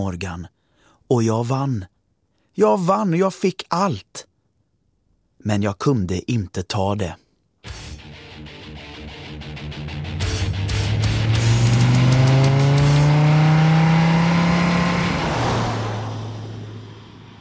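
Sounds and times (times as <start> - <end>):
speech: 0.0 - 1.9, 2.6 - 4.3, 5.4 - 7.8
car engine accelerating hard at 180 km per hour: 10.2 - 17.4.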